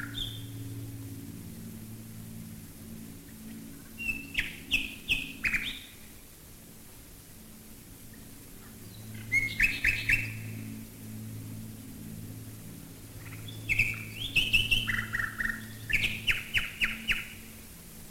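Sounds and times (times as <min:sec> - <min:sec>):
common nightingale singing: 0:00.0 - 0:00.7, 0:04.0 - 0:06.0, 0:08.9 - 0:10.5, 0:13.2 - 0:17.5
low drone of bomber engines overhead: 0:00.0 - 0:18.1.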